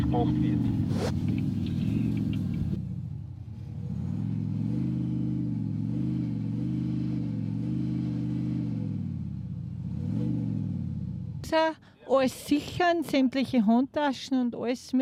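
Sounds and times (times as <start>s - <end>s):
speech: 0.0s - 1.4s, 11.5s - 15.0s
car engine revving on a driver-training track: 0.0s - 11.4s.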